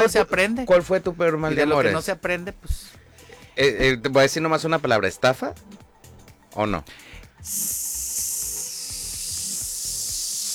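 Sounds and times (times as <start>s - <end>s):
speech: 0.0s - 3.0s, 3.6s - 5.8s, 6.5s - 7.8s
balloon deflating: 7.4s - 10.5s.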